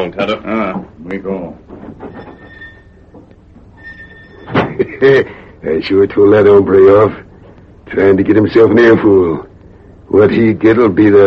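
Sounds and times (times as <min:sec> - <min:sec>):
speech: 0:00.0 - 0:02.2, 0:05.0 - 0:07.2, 0:07.9 - 0:09.5, 0:10.1 - 0:11.2
door creaking open with a drawn-out squeal: 0:01.6 - 0:04.9
door shutting with a solid thud: 0:04.5 - 0:04.9.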